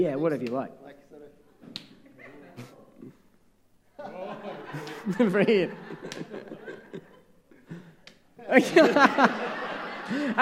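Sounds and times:
speech: 0:00.0 - 0:00.9, 0:04.0 - 0:06.4, 0:08.5 - 0:10.4
hand slaps in a hand-slapping game: 0:00.3 - 0:00.6, 0:01.6 - 0:02.0, 0:04.8 - 0:05.1, 0:06.0 - 0:06.4, 0:08.0 - 0:08.2
laughter: 0:02.0 - 0:03.2, 0:04.0 - 0:10.4.

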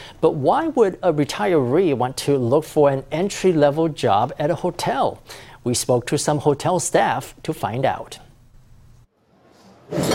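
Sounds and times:
quiet room hum: 0:00.0 - 0:10.1
speech: 0:00.2 - 0:08.2, 0:09.9 - 0:10.1
metal cutlery clattering as it is set down on a table: 0:09.9 - 0:10.1.

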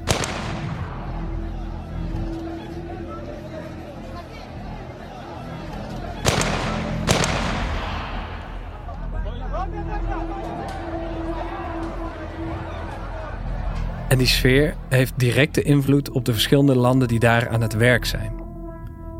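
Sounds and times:
sniper gunshots fired at a security guard: 0:00.0 - 0:01.2, 0:06.2 - 0:08.8
murmuring voices: 0:00.6 - 0:14.2
speech: 0:14.1 - 0:18.4.

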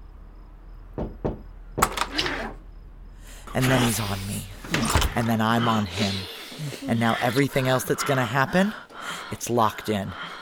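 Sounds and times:
knocking on a motel room door: 0:01.0 - 0:02.0
speech: 0:03.5 - 0:10.3.

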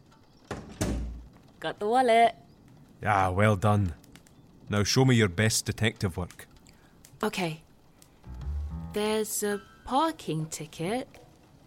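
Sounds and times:
door thudding shut: 0:00.5 - 0:01.3
speech: 0:01.6 - 0:02.4, 0:03.0 - 0:04.0, 0:04.7 - 0:06.5, 0:07.2 - 0:07.6, 0:09.0 - 0:11.2.

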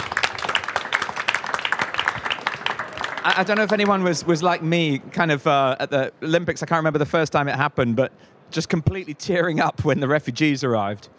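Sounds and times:
room full of people applauding: 0:00.0 - 0:04.6
speech: 0:03.2 - 0:11.1.

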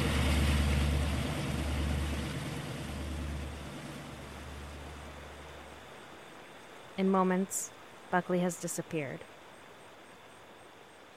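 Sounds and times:
motorboat engine droning: 0:00.0 - 0:06.1
churning water: 0:00.0 - 0:07.7
speech: 0:07.0 - 0:09.3.

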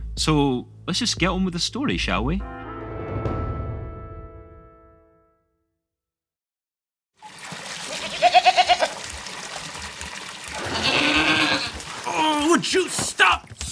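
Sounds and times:
speech: 0:00.2 - 0:02.6
water splashing and sloshing in a tub: 0:07.2 - 0:13.6
goat bleating while being washed in a tub: 0:07.9 - 0:09.0, 0:10.6 - 0:11.8.

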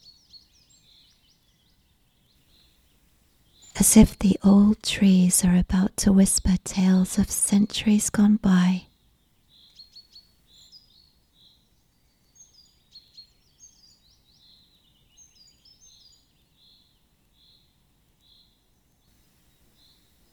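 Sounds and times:
birds singing in a woodland: 0:00.0 - 0:20.3
soft hush: 0:03.6 - 0:08.8
speech: 0:03.8 - 0:08.9.

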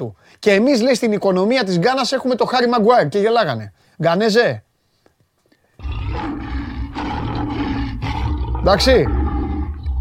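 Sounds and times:
speech: 0:00.0 - 0:04.7, 0:08.6 - 0:09.2
lion roaring: 0:05.8 - 0:10.0.

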